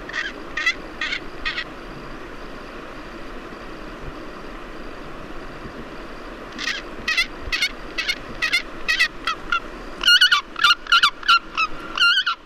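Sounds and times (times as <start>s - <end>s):
Pallas's fish eagle giving harsh honking calls: 0.0s - 1.7s, 6.6s - 12.4s.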